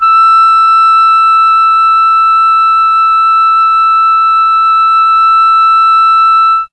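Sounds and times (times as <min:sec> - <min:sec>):
alto sax playing E4: 0:00.0 - 0:06.7.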